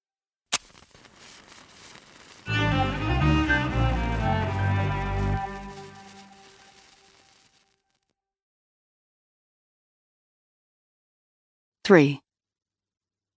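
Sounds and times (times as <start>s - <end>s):
fireworks popping and crackling: 0.5s - 7.9s
speech: 11.9s - 12.2s.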